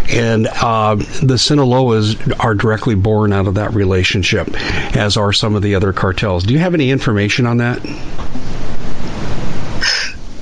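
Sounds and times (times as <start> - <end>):
steady rushing noise: 0.0 - 10.4
speech: 0.1 - 8.5
person sneezing: 9.8 - 10.2.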